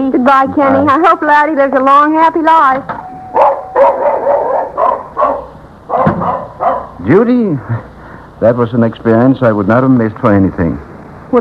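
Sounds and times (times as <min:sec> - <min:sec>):
speech: 0:00.3 - 0:04.0, 0:07.0 - 0:11.3
dog barking: 0:03.3 - 0:07.0.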